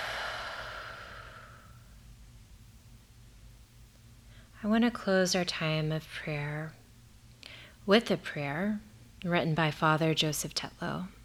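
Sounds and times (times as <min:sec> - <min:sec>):
deep breath let out in one long slow exhale: 0:00.0 - 0:02.0
speech: 0:04.6 - 0:06.8, 0:07.9 - 0:11.2.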